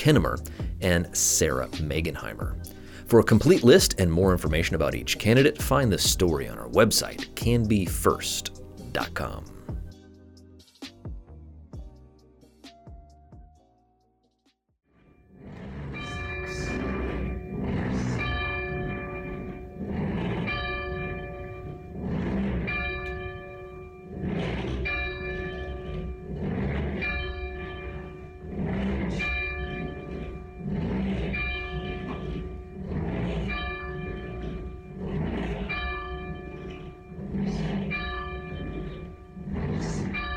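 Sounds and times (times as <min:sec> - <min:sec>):
speech: 0:00.0 - 0:09.6
large bell tolling: 0:15.8 - 0:40.3.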